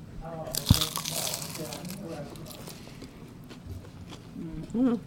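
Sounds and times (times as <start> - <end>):
person biting into crispy deep-fried food: 0.4 - 4.3
person chewing: 0.5 - 4.8.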